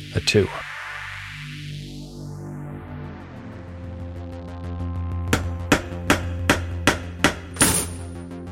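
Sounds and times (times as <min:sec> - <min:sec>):
speech: 0:00.3 - 0:00.6
hammer striking a metal padlock in hilly woods: 0:05.3 - 0:08.2.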